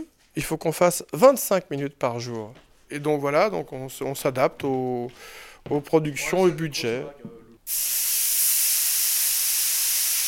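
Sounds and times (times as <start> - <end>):
speech: 0.0 - 8.2
steam from a hot iron hissing on a wet cloth: 7.7 - 10.2.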